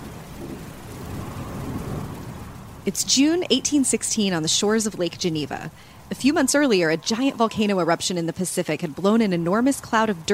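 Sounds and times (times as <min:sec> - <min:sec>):
low rolling thunder on the shores of Lake Geneva: 0:00.0 - 0:08.0
heavy rain on the shores of Lake Geneva: 0:00.0 - 0:10.3
speech: 0:02.8 - 0:10.3.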